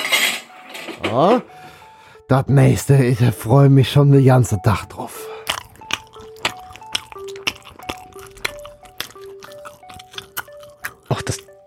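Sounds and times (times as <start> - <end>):
speech: 1.0 - 1.6, 2.3 - 5.3
crunching bite and chewing of a pickled gherkin: 5.2 - 11.6.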